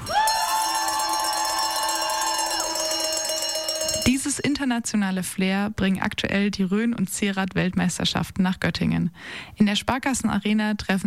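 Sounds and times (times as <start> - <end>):
large indoor arena crowd cheering: 0.0 - 4.1
cowbells clanging: 0.3 - 4.6
speech: 4.4 - 11.0.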